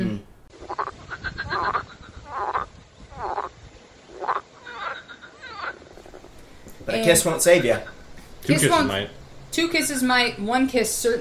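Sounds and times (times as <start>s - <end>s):
frog croaking: 0.5s - 8.2s
speech: 7.0s - 7.9s, 8.5s - 11.1s.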